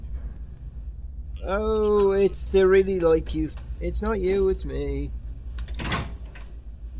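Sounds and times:
steady low hum: 0:00.0 - 0:06.9
speech: 0:01.4 - 0:05.2
door swinging shut with a rattling thud: 0:05.7 - 0:06.5.

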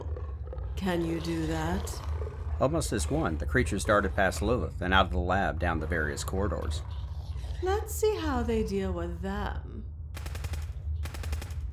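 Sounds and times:
steady low rumble: 0:00.0 - 0:11.7
speech: 0:00.8 - 0:07.0, 0:07.6 - 0:09.8
gunfire shots: 0:10.2 - 0:11.7.

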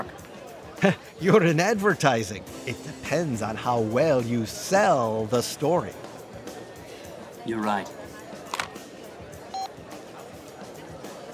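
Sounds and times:
murmur of noise and chatter in a bar: 0:00.0 - 0:11.3
speech: 0:00.8 - 0:06.1, 0:07.4 - 0:08.0
cell phone keypad tone beeping: 0:09.5 - 0:09.7.

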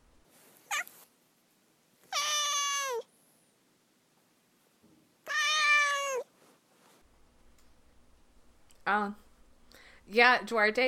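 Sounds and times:
domestic cat meowing: 0:00.7 - 0:01.0, 0:02.1 - 0:03.1, 0:05.2 - 0:06.3
speech: 0:08.9 - 0:09.2, 0:10.1 - 0:10.8.

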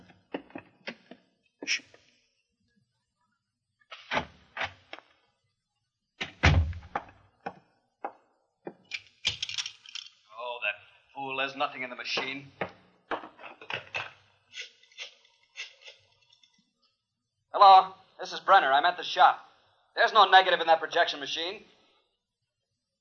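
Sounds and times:
speech: 0:01.7 - 0:01.9, 0:11.4 - 0:12.6, 0:17.6 - 0:21.7
heavy thud of back door shutting: 0:06.2 - 0:07.2
back door latch clicks and rattles: 0:08.8 - 0:10.1.

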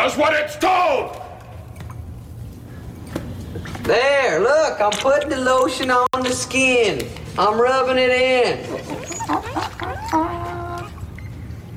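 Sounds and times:
speech: 0:00.0 - 0:01.3, 0:03.6 - 0:10.6
dog whimpering and whining: 0:08.6 - 0:11.2.

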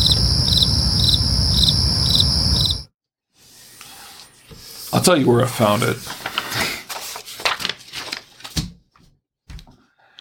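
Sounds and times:
crickets chirping in a loud chorus: 0:00.0 - 0:02.9
speech: 0:05.0 - 0:06.2.

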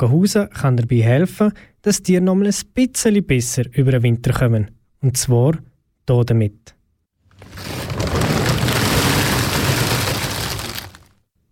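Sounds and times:
speech: 0:00.0 - 0:06.8
sack of chestnuts being poured out: 0:07.3 - 0:11.2.

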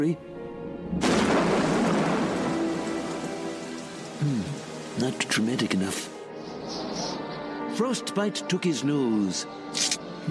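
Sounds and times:
speech: 0:00.0 - 0:00.3, 0:04.2 - 0:06.1, 0:07.8 - 0:10.2
deep rolling rumble of thunder: 0:00.8 - 0:05.3
heavy rain: 0:00.8 - 0:06.3.

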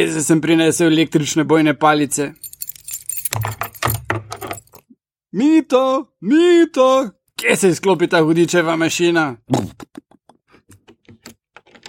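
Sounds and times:
speech: 0:00.0 - 0:02.5, 0:05.3 - 0:10.0
ring of keys jangling and clinking: 0:02.3 - 0:04.8.

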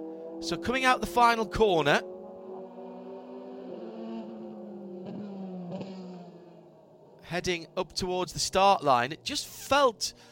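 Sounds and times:
mid-engine twin-turbocharged C8R race car accelerating with gear shifts: 0:00.0 - 0:06.6
speech: 0:00.4 - 0:02.1, 0:07.3 - 0:10.3.

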